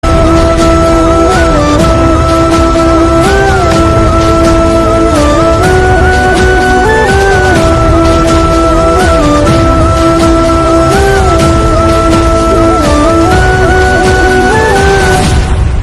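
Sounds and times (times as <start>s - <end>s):
love-themed flute background music: 0.0s - 15.8s.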